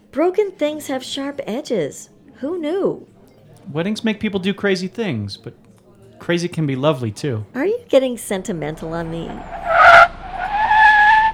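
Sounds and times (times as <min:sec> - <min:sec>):
speech: 0:00.1 - 0:03.1, 0:03.7 - 0:05.6, 0:06.2 - 0:09.6
car tires squealing while pulling in to park: 0:09.3 - 0:11.3.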